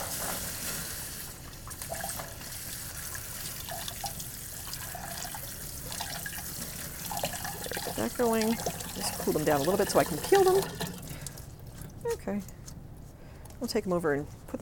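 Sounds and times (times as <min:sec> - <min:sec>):
tap water running into a sink over blanched almonds: 0:00.0 - 0:12.0
speech: 0:08.1 - 0:10.8, 0:12.3 - 0:12.6, 0:13.6 - 0:14.6.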